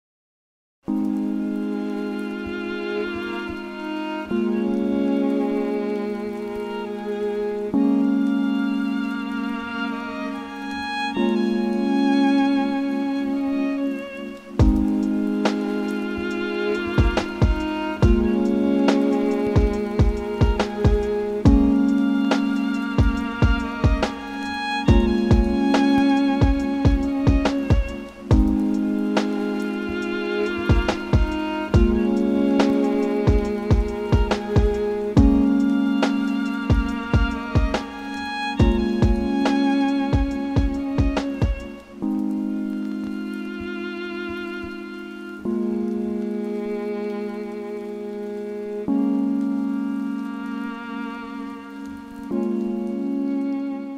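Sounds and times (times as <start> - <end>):
lo-fi chill violin music: 0.8 - 53.9
rain: 0.8 - 53.9.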